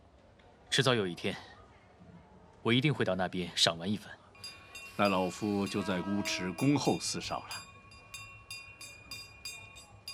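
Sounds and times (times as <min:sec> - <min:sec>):
speech: 0:00.8 - 0:01.5, 0:02.6 - 0:04.2, 0:05.0 - 0:07.6
train about to depart low rumble: 0:04.4 - 0:10.1.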